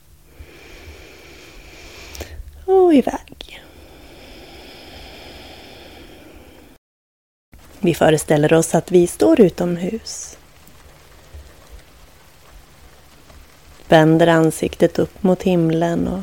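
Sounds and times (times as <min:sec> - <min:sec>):
soft steady rain falling: 0:00.0 - 0:06.8, 0:07.6 - 0:16.2
slow deep inhale in a guided visualization exercise: 0:00.2 - 0:02.5, 0:03.5 - 0:06.8
speech: 0:02.7 - 0:03.3, 0:07.8 - 0:10.4, 0:13.9 - 0:16.2.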